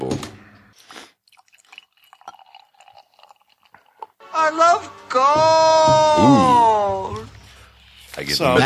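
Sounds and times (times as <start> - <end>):
IPA beer pouring into a glass: 1.2 - 4.2
speech: 4.4 - 6.7, 8.3 - 8.6.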